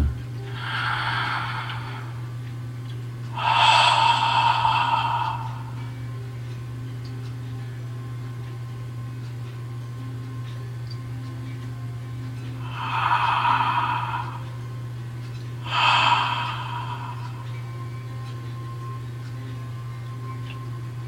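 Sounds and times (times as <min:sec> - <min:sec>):
low hum: 0:00.0 - 0:21.0
loud hissing breaths in a meditation breathing exercise: 0:00.5 - 0:02.3, 0:03.3 - 0:05.9, 0:12.6 - 0:14.6, 0:15.6 - 0:17.6.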